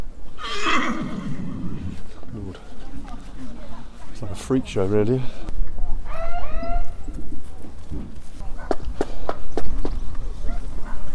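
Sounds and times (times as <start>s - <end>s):
outdoor noise: 0.0s - 11.1s
black horse whinnying: 0.4s - 2.0s
speech: 4.5s - 5.4s.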